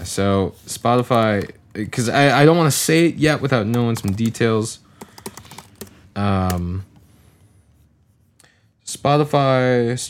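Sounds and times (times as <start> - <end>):
speech: 0.0 - 4.8, 6.2 - 6.9, 8.9 - 10.0
typing on a computer keyboard: 3.6 - 6.8.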